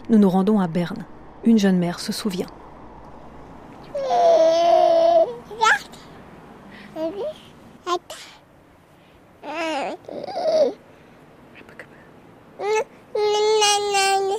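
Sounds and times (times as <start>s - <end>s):
speech: 0.1s - 2.6s
nine-month-old baby girl babbling and cooing after waking up: 3.8s - 6.2s, 7.0s - 8.4s, 9.4s - 10.8s, 12.6s - 14.3s.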